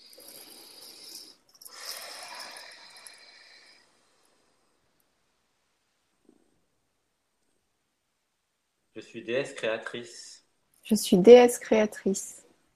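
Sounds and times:
deep breath during a guided affirmation exercise: 0:00.0 - 0:05.0
speech: 0:09.0 - 0:12.4.

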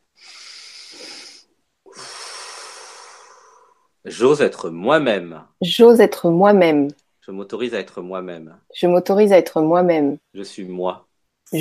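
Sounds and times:
slow airy exhale: 0:00.2 - 0:03.9
long deep inhale: 0:00.2 - 0:04.0
speech: 0:04.1 - 0:11.5.

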